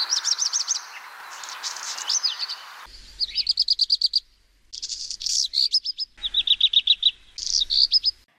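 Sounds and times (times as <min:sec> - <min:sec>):
Black redstart song of high, rapid, rattling phrases with scratchy notes: 0:00.0 - 0:08.3.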